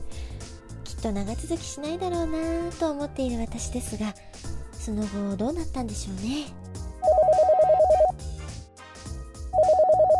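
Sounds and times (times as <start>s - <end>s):
soft music: 0.0s - 10.1s
speech: 1.0s - 6.6s
telephone ringing with a rapid electronic trill: 7.0s - 8.1s, 9.6s - 10.1s.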